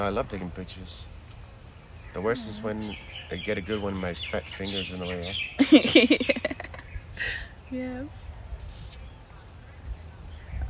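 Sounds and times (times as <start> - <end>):
speech: 0.0 - 1.2, 2.1 - 8.2
black crested bird harsh raspy squawking calls: 2.1 - 6.9
laughter: 5.6 - 7.4.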